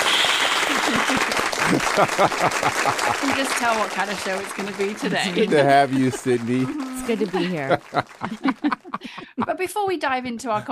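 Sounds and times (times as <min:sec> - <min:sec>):
studio audience applause: 0:00.0 - 0:09.5
studio audience members cheering: 0:00.0 - 0:09.5
laughter: 0:00.6 - 0:10.7
speech: 0:01.7 - 0:10.7.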